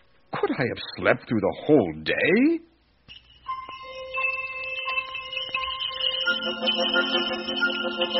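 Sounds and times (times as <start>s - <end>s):
speech: 0.6s - 3.2s, 6.4s - 8.1s
bells jingling: 3.1s - 8.1s.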